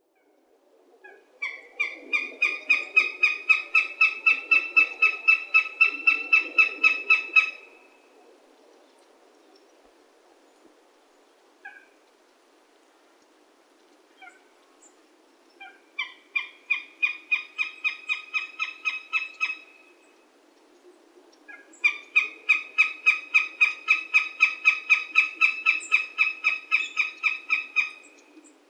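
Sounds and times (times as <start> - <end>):
goshawk calling: 1.0 - 7.8, 15.6 - 19.8, 21.5 - 28.2.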